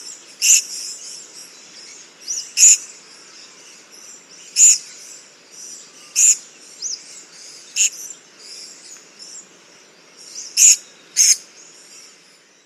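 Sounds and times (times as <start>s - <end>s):
Purple-crowned Lorikeet screeching in the Stirling Range, Western Australia: 0.4s - 0.8s, 2.6s - 2.8s, 4.6s - 4.8s, 6.1s - 7.0s, 10.4s - 11.4s.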